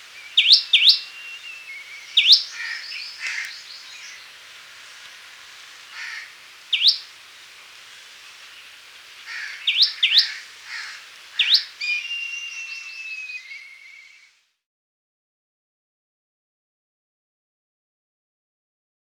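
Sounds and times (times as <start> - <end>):
common tailorbird singing: 0.0 - 5.3, 5.9 - 14.2
other birds twittering and chirping: 0.0 - 14.3.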